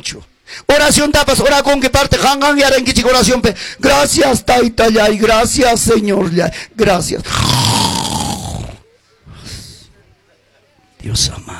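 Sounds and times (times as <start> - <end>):
speech: 0.0 - 7.9, 11.0 - 11.5
person snoring: 7.2 - 8.8.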